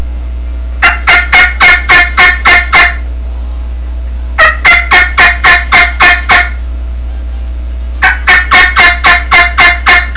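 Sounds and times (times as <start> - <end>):
turkey yelps: 0.8 - 3.0, 4.4 - 6.6, 8.0 - 10.1.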